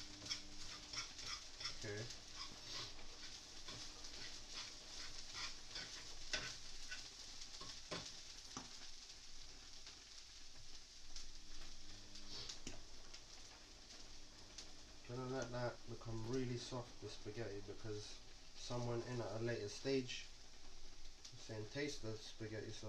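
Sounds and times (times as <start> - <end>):
scraping strokes as tuna is stirred in a pan: 0.0 - 8.9
tuna frying in a hot pan: 0.0 - 22.8
speech: 1.8 - 2.3, 15.4 - 20.3, 21.5 - 22.8.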